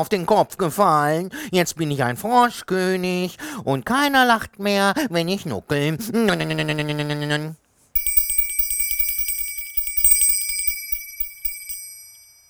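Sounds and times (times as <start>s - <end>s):
speech: 0.0s - 7.6s
small bell ringing: 8.0s - 12.4s.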